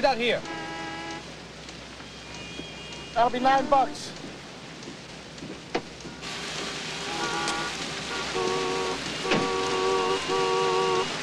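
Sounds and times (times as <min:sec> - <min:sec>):
speech: 0:00.0 - 0:00.6, 0:03.2 - 0:04.3
car horns honking: 0:00.0 - 0:03.6, 0:06.1 - 0:11.2
heavy torrential rain on gridlocked city traffic: 0:00.0 - 0:11.2.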